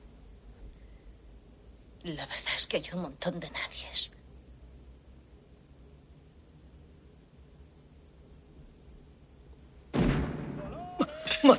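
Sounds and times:
speech: 0:02.0 - 0:04.2
gunshot fired into the air from a pickup truck outside a house: 0:09.9 - 0:10.8.

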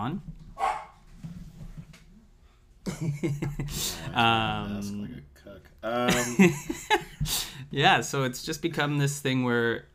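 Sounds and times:
speech: 0:00.0 - 0:00.4, 0:02.8 - 0:09.9
dog barking and yipping: 0:00.6 - 0:01.0
laughter: 0:02.9 - 0:04.2, 0:06.1 - 0:07.4.

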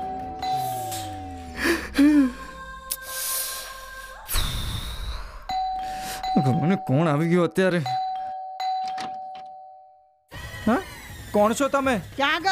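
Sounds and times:
electronic doorbell chime tones: 0:00.0 - 0:01.6, 0:05.5 - 0:10.2
breathy noise: 0:00.6 - 0:06.4
speech: 0:06.4 - 0:08.0, 0:11.4 - 0:12.5.

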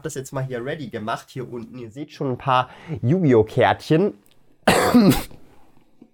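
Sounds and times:
speech: 0:00.0 - 0:05.4
harsh throaty cough: 0:04.7 - 0:05.4.

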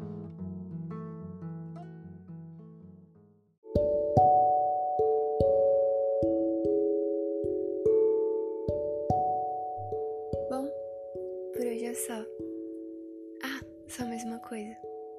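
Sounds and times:
bright melody of bell-like struck notes: 0:03.7 - 0:15.1
soft sustained instrumental chords: 0:04.2 - 0:15.1.

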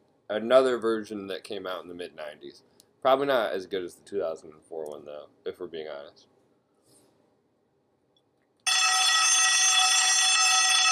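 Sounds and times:
speech: 0:00.3 - 0:06.3
electric alarm bell ringing: 0:08.7 - 0:10.9.

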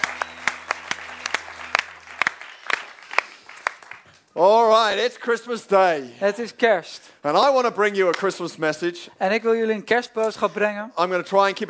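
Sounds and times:
audience applause for a band on Christmas Day: 0:00.0 - 0:04.2
speech: 0:04.4 - 0:11.6.

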